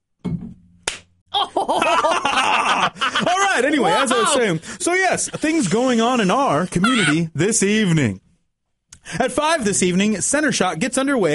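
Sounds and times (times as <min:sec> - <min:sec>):
sharp loud slap: 0:00.8 - 0:01.1
laughter: 0:01.4 - 0:05.9, 0:06.8 - 0:07.2
speech: 0:03.0 - 0:08.2, 0:09.0 - 0:11.3
people exclaiming and chattering excitedly: 0:06.8 - 0:07.2.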